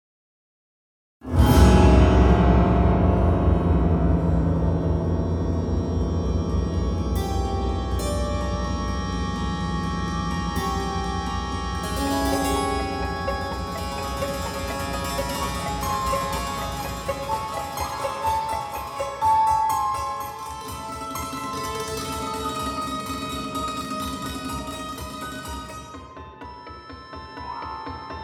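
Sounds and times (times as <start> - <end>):
keyboards: 1.3 - 28.2.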